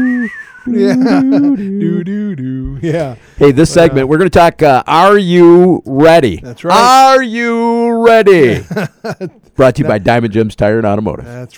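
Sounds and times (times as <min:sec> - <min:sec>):
voice imitating a spaghetti western whistle: 0:00.0 - 0:02.7
laughter: 0:00.0 - 0:04.0, 0:08.4 - 0:09.8
speech: 0:00.3 - 0:11.5.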